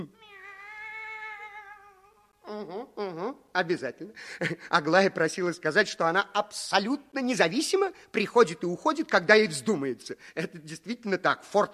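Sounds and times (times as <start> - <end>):
speech: 0.0 - 0.3, 2.5 - 11.7
cat meowing: 0.1 - 2.4.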